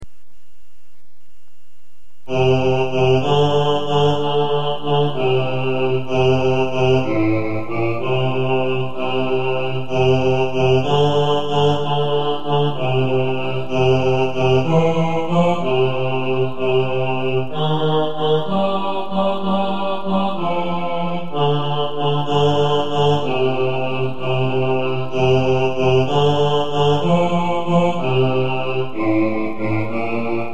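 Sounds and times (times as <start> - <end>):
choir singing four-part bass: 2.2 - 30.5.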